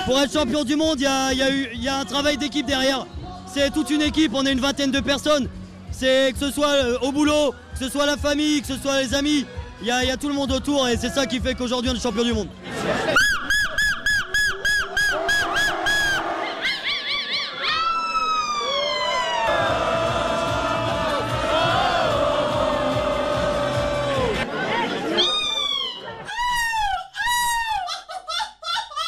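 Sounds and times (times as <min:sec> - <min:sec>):
speech: 0:00.0 - 0:13.3
laughter: 0:12.6 - 0:14.2, 0:16.4 - 0:18.7, 0:19.7 - 0:29.0
people imitating seagull calls at a seagull-screaming championship: 0:13.2 - 0:18.8, 0:25.1 - 0:27.9.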